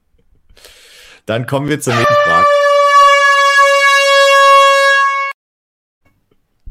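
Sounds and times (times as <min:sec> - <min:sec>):
speech: 0:01.3 - 0:02.6
loud sustained brassy horn blast: 0:01.9 - 0:05.4.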